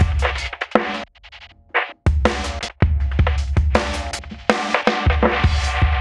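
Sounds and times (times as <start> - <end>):
ambient drum beat loop: 0.0 - 5.9.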